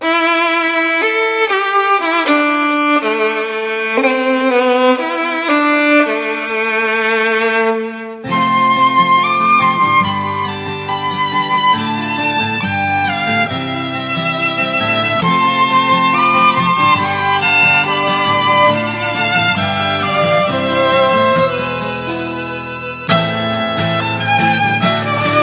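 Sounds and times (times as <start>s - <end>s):
Slovak violin in electronica music: 0.0s - 25.4s.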